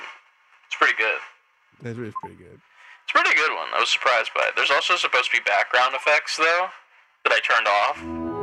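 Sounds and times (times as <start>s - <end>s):
speech: 0.9s - 8.2s
voice speaking through a tinny radio-like voice changer effect: 1.8s - 2.6s.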